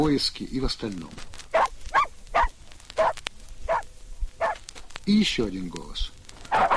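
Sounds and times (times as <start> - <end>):
speech: 0.0 - 1.3, 5.1 - 6.1
reindeer-herding laika dog barking: 1.5 - 3.8, 4.4 - 4.6, 6.5 - 6.7.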